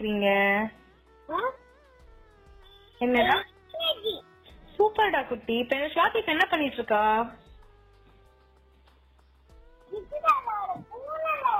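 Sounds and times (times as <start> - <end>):
speech: 0.0 - 1.4, 3.0 - 4.2, 4.8 - 7.4
child imitating cat meows: 10.0 - 11.5.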